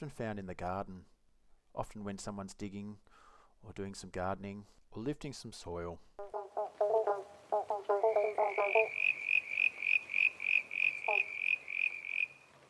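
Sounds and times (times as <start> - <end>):
speech: 0.0 - 1.2, 1.8 - 6.2
eastern banjo frogs giving resonant plonking notes: 6.2 - 12.5.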